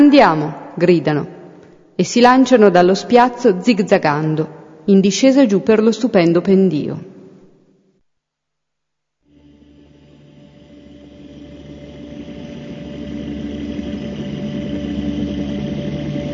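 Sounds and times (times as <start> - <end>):
speech: 0.0 - 1.4, 2.0 - 7.1
engine revving as the accelerator is pressed on a snowy slope: 9.3 - 16.3.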